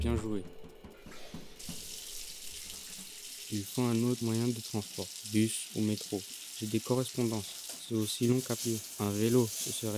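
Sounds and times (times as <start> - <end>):
speech: 0.0 - 0.7, 3.5 - 9.9
shower water running while the temperature is being adjusted: 1.2 - 9.9.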